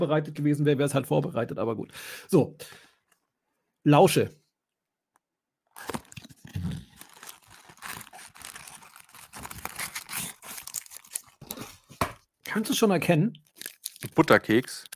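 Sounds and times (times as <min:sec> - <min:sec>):
speech: 0:00.0 - 0:02.8, 0:03.8 - 0:04.4, 0:05.8 - 0:06.8, 0:12.5 - 0:13.4, 0:14.0 - 0:14.9
paper wrapper crinkling: 0:05.7 - 0:12.0, 0:13.4 - 0:14.9.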